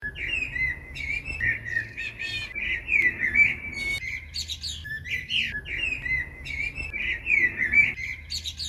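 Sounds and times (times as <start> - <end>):
bird calling in a forest: 0.0 - 8.6.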